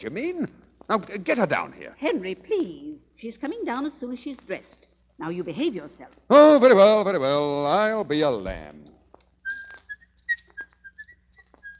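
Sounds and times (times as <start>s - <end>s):
speech: 0.0s - 8.9s
man whistling a lilting tune: 9.4s - 11.7s.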